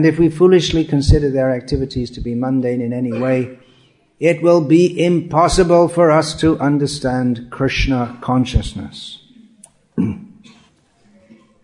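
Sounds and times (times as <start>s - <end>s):
speech: 0.0s - 3.6s, 4.2s - 9.2s, 10.0s - 10.2s
faint low noise: 0.0s - 11.6s
person coughing: 3.1s - 3.5s, 10.0s - 10.7s.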